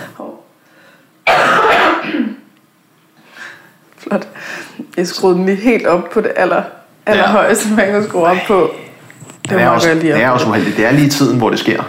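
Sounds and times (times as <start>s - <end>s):
loud harsh person coughing: 1.3s - 2.5s
speech: 4.1s - 8.8s, 9.5s - 11.8s.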